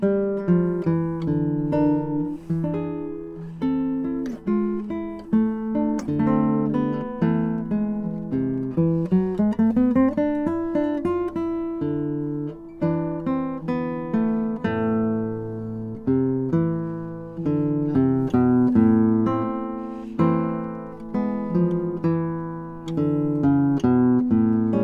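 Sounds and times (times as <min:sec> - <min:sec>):
guitar playing: 0:00.0 - 0:24.8.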